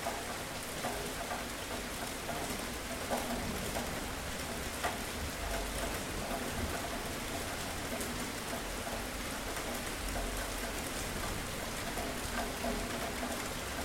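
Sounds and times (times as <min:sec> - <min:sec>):
steady dense rain pouring: 0:00.0 - 0:13.8.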